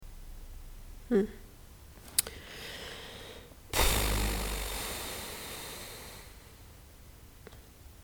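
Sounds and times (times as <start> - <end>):
person sighing: 2.5 - 6.4.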